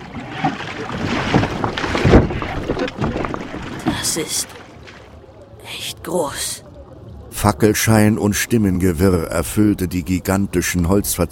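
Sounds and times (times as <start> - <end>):
rowing boat oar strokes splashing: 0.0 - 5.4
steady rush of water: 0.0 - 11.3
wind: 0.0 - 11.3
speech: 4.1 - 4.6, 6.1 - 6.6, 7.4 - 11.3.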